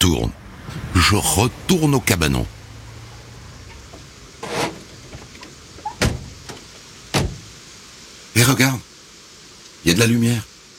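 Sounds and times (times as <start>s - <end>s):
speech: 0.2s - 2.6s, 8.4s - 8.9s, 9.8s - 10.5s
knocking on a door: 7.1s - 7.5s.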